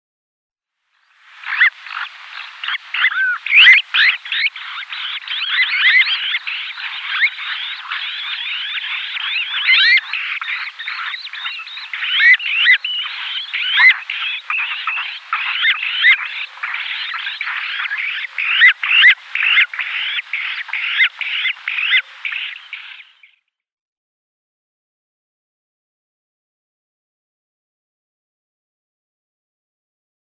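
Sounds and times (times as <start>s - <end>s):
Azure-winged Magpie nestlings: 1.4s - 23.0s.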